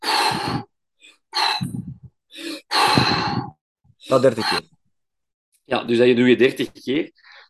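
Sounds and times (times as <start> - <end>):
forceful breathing in and out during a hypoxic breathing exercise: 0.0 - 4.7
speech: 4.1 - 4.8, 5.7 - 7.4.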